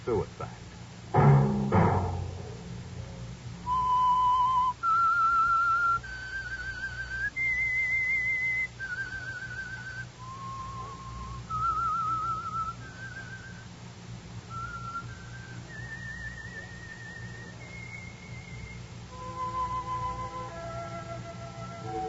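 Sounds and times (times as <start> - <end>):
speech: 0.0 - 0.7
faint low hum: 0.0 - 22.0
solo whistled melody: 3.6 - 13.7, 14.5 - 22.0.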